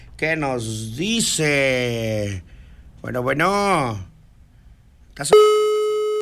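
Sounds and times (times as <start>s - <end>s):
speech: 0.2s - 4.1s, 5.2s - 5.7s
telephone ringing tone from a call being placed: 5.3s - 6.2s.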